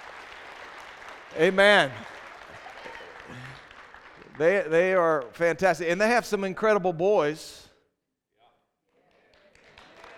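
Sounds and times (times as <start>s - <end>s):
church audience clapping: 0.0s - 6.0s, 8.8s - 10.1s
speech: 1.3s - 2.1s, 4.4s - 7.6s.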